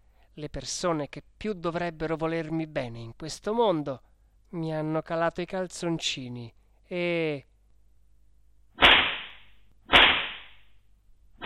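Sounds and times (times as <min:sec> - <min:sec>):
speech: 0:00.4 - 0:07.5
whip lashes cracking: 0:08.8 - 0:10.6.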